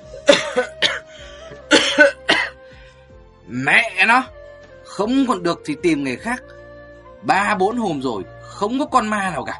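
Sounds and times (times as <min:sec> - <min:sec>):
old man coughing hoarsely: 0:00.1 - 0:02.6
speech: 0:04.0 - 0:04.4, 0:05.0 - 0:06.6, 0:07.2 - 0:09.5.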